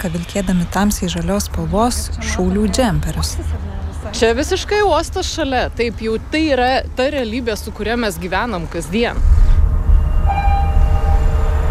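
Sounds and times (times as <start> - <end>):
speech: 0.0 - 9.4
freight train running along a railway beside a cargo terminal at Klaipėda port: 0.0 - 11.6
thin high tone: 9.9 - 11.6.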